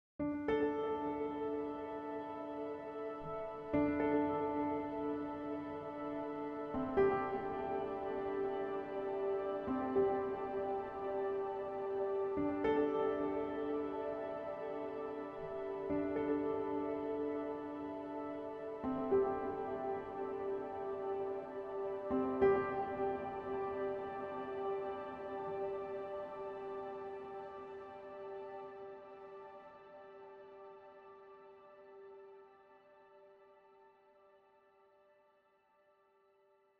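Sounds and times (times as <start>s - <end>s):
cinematic harmony texture: 1.0s - 31.3s.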